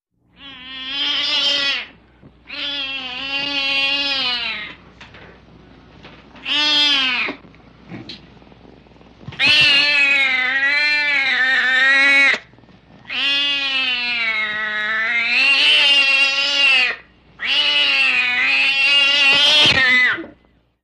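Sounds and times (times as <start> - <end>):
cat yowling angrily: 0.4 - 4.8, 6.4 - 7.4, 9.4 - 12.5, 13.1 - 20.4.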